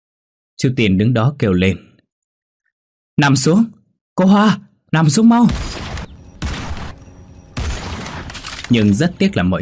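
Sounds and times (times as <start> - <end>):
speech: 0.6 - 1.9, 3.2 - 5.8, 8.7 - 9.6
crackling gunfire volleys with low booming weight in a dramatized scene: 5.4 - 9.2.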